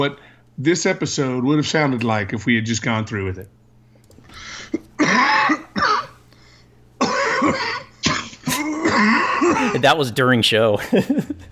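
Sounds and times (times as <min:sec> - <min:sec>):
speech: 0:00.0 - 0:03.6, 0:04.3 - 0:05.6, 0:09.6 - 0:11.5
person clearing throat: 0:04.1 - 0:06.2, 0:07.0 - 0:09.8
person coughing in rough chesty bursts: 0:04.1 - 0:06.2, 0:07.0 - 0:10.0
laughter: 0:10.7 - 0:11.5.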